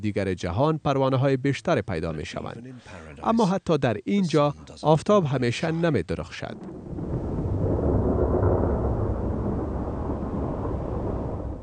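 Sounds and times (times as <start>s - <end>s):
speech: 0.0s - 7.0s
deep thunder rumbling: 6.3s - 11.6s
heavy rain: 6.6s - 11.6s.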